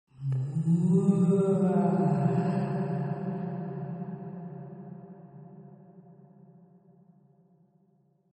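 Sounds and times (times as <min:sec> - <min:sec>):
ghostly moan: 0:00.2 - 0:03.4.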